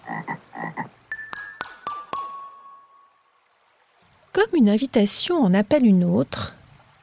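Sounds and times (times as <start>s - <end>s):
frog croaking: 0.0s - 1.0s
bright plinks: 1.1s - 3.3s
speech: 4.4s - 6.6s.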